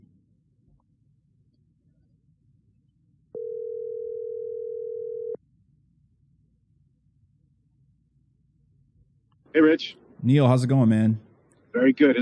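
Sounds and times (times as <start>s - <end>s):
outgoing phone call ringing tone: 3.4s - 5.4s
speech: 9.6s - 11.2s, 11.8s - 12.2s.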